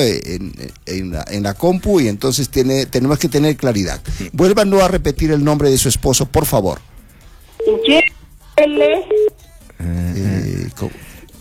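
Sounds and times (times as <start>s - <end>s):
speech: 0.0s - 6.9s, 7.7s - 11.1s
short electronic telephone keypad beeps: 7.6s - 8.1s, 8.7s - 9.4s.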